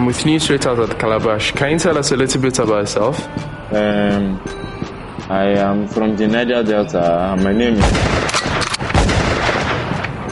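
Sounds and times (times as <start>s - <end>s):
speech: 0.0s - 8.4s
gunshot bang: 7.8s - 10.2s.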